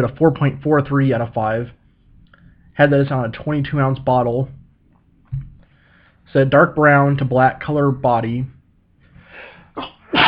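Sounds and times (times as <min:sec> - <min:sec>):
speech: 0:00.0 - 0:01.8, 0:02.8 - 0:04.6, 0:06.3 - 0:08.6, 0:09.4 - 0:10.2
loud sneeze: 0:09.8 - 0:10.2.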